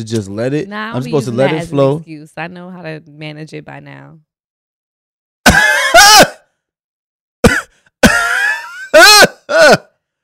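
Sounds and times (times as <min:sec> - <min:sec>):
speech: 0:00.0 - 0:04.3, 0:09.5 - 0:09.9
raspy throat clearing: 0:05.4 - 0:06.4, 0:07.4 - 0:09.9
coughing: 0:05.4 - 0:06.5, 0:07.4 - 0:10.0.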